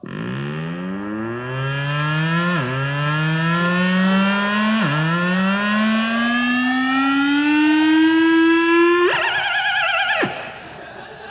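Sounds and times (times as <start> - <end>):
electronic instrument imitating a car alarm: 0.0 - 10.8
laughter: 10.2 - 11.3.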